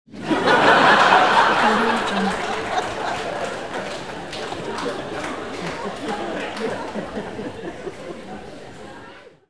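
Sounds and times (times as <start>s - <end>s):
crowd laughing: 0.1s - 9.4s.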